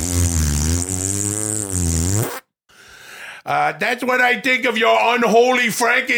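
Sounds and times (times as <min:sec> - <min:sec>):
long loud buzzing fart: 0:00.0 - 0:02.5
speech: 0:03.4 - 0:06.1.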